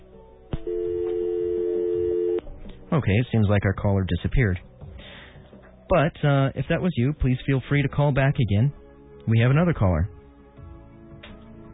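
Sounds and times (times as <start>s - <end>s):
telephone line click: 0.6s - 2.4s
speech: 2.9s - 4.7s, 5.9s - 10.2s.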